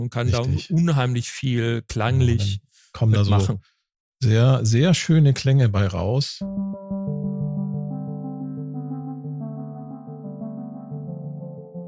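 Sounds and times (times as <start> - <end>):
speech: 0.0 - 6.9
wavetable synthesizer patch with steel drum tone: 6.4 - 11.8.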